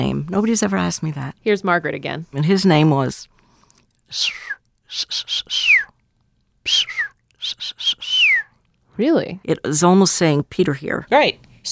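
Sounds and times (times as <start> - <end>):
speech: 0.0 - 3.4, 4.1 - 5.7, 9.0 - 11.7
person imitating a dolphin signature whistle: 4.1 - 6.0, 6.6 - 8.5.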